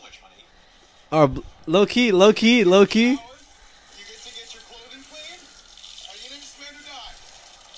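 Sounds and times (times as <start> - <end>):
speech: 1.1 - 3.3
outdoor shower water spraying: 3.3 - 7.7.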